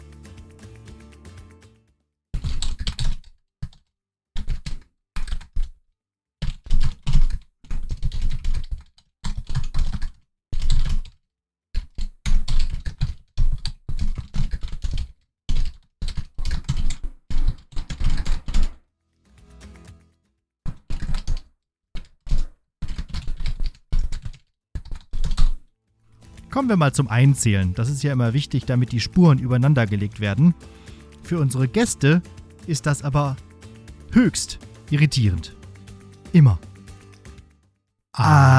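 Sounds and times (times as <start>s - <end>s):
loud typing on a computer keyboard: 2.4s - 5.7s, 6.4s - 11.2s, 11.8s - 18.8s, 20.7s - 25.6s, 26.6s - 37.2s
speech: 26.6s - 33.5s, 34.1s - 35.6s, 36.3s - 36.7s, 38.2s - 38.5s.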